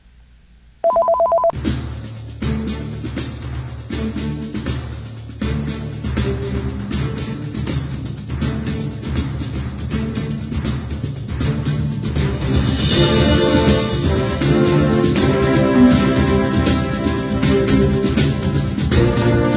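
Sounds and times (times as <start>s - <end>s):
electronic telephone ring: 0.8s - 1.6s
busy music: 1.6s - 19.5s.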